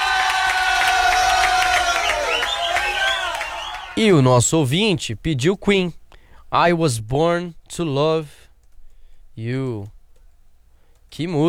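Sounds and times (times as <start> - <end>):
crowd applauding: 0.0 - 4.2
rising gliding whistle-like tones: 0.7 - 4.0
speech: 4.0 - 8.4, 9.4 - 9.9, 11.1 - 11.4.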